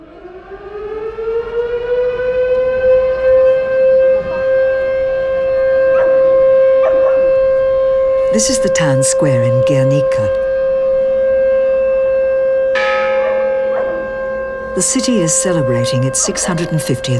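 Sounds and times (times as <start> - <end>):
factory sirens wailing in commemoration of a bombing in a town square: 0.0 - 17.1
church bell clanging in a town square: 5.4 - 17.1
speech: 8.4 - 10.4, 14.8 - 17.1.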